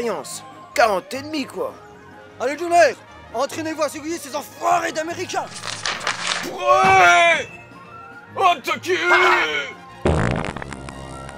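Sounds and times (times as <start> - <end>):
speech: 0.0 - 5.8, 6.4 - 7.6, 8.4 - 10.2
long raspy fart from a man straining: 10.0 - 11.3.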